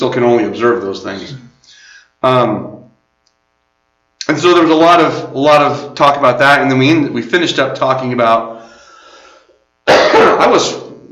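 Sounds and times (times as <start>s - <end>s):
speech: 0.0s - 1.5s, 2.2s - 2.8s, 4.2s - 8.6s, 10.2s - 10.8s
rough throat clearing: 9.9s - 10.6s
person coughing: 9.9s - 10.7s.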